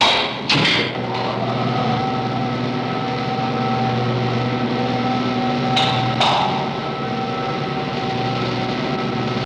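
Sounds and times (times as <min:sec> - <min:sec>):
elevator starting and running: 0:00.0 - 0:09.4.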